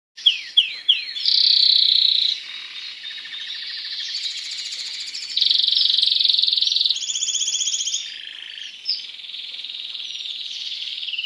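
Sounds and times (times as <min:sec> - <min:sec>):
Spanish timbrado canary song: 0:00.2 - 0:11.2.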